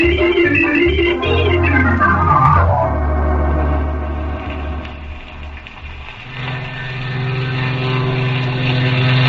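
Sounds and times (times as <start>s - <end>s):
airplane engine passing: 0.0s - 9.2s.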